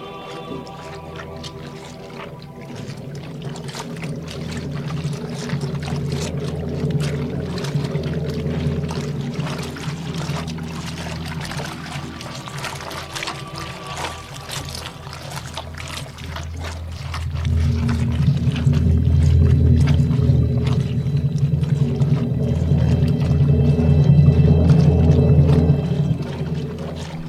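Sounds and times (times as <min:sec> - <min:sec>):
boots splashing through shallow water: 0:00.0 - 0:27.2
dark ambient music drones: 0:00.0 - 0:27.2.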